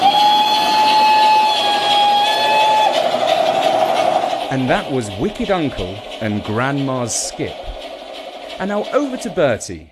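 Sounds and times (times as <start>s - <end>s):
vintage steam train whistle blowing a long shrill note: 0.0s - 4.0s
rushing hiss and rumble of a moving vintage steam engine: 0.0s - 9.9s
speech: 4.5s - 7.7s, 8.6s - 9.9s.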